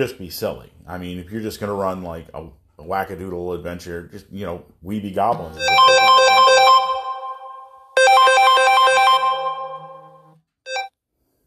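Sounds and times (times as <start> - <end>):
speech: 0.0 - 5.9
melodic phone ringtone with bright chiming notes: 5.6 - 10.9.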